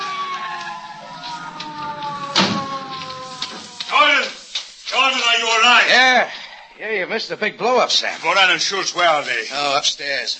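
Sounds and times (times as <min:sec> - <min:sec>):
police car siren: 0:00.0 - 0:04.4
police car screeching to a stop: 0:00.0 - 0:05.9
speech: 0:05.8 - 0:10.3.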